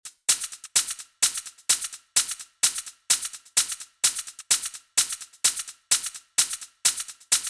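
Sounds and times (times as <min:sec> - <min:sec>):
hat shaker: 0:00.0 - 0:07.4.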